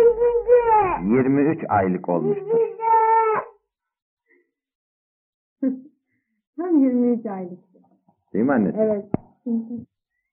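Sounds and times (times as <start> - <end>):
toddler squealing: 0.0 - 1.1, 2.1 - 3.5
speech: 1.1 - 2.7, 5.6 - 5.9, 6.6 - 7.7, 8.3 - 9.9.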